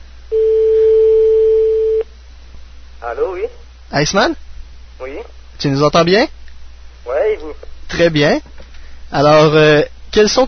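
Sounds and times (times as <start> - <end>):
telephone ringback tone on an outgoing call: 0.3 - 2.0
speech: 3.1 - 4.4, 5.0 - 6.4, 7.3 - 8.5, 9.1 - 10.4.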